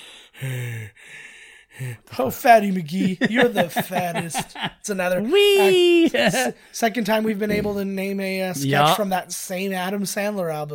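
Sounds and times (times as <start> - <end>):
heavy raspy breathing: 0.0 - 2.2
speech: 1.8 - 10.7
laughter: 2.2 - 6.6.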